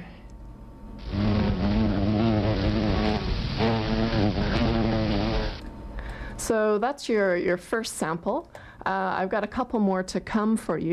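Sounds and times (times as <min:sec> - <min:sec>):
bumblebee buzzing: 0:01.0 - 0:05.6
speech: 0:06.5 - 0:10.9.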